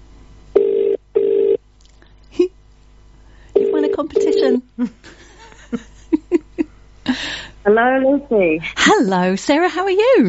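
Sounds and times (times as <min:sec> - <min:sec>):
phone line ringing at the caller's end: 0:00.6 - 0:01.6, 0:03.6 - 0:04.6
speech: 0:04.0 - 0:05.1, 0:07.6 - 0:10.2.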